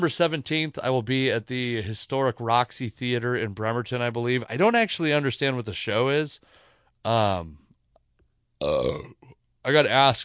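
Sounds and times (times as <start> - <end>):
speech: 0.0 - 7.6, 8.6 - 10.2
person burping while drinking: 8.6 - 9.4.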